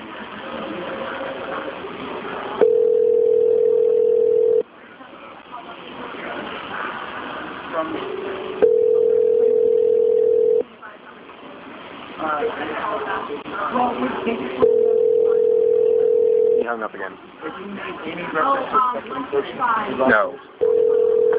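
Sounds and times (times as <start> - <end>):
faint murmur: 0.0 - 21.3
phone line ringback tones: 2.6 - 4.6, 8.6 - 10.6, 14.6 - 16.6, 20.6 - 21.3.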